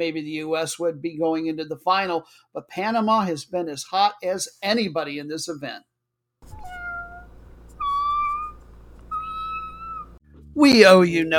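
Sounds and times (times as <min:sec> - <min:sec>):
speech: 0:00.0 - 0:05.9, 0:10.6 - 0:11.3
cat meowing: 0:06.4 - 0:10.2
steady hiss: 0:06.5 - 0:10.2.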